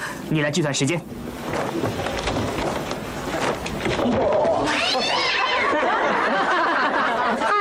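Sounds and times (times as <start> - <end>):
speech: 0.3 - 2.0
clattering noisy commotion: 1.2 - 4.8
laughter: 4.0 - 7.5
cat yowling after being hit by balls: 4.6 - 5.8.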